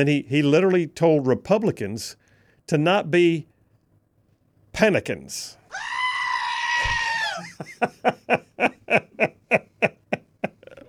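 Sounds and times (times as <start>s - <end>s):
speech: 0.0s - 3.5s, 4.7s - 6.0s, 7.8s - 9.4s
goat screaming and bleating: 5.7s - 7.6s
laughter: 6.8s - 10.8s.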